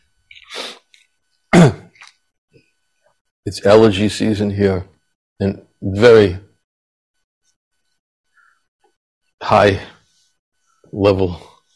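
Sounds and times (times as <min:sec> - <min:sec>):
person coughing from allergies: 0:01.5 - 0:02.1
speech: 0:03.4 - 0:06.4, 0:09.4 - 0:10.0, 0:10.9 - 0:11.5.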